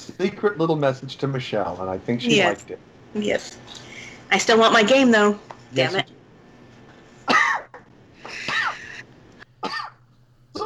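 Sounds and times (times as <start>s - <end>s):
speech: 0.2s - 6.2s
harsh coughs: 7.2s - 9.0s, 9.6s - 10.0s.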